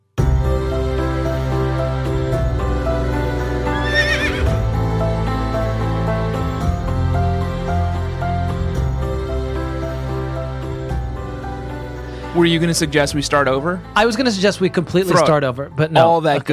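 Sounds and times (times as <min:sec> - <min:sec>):
instrumental music: 0:00.2 - 0:16.5
horse whinnying: 0:03.6 - 0:04.6
speech: 0:12.4 - 0:16.5.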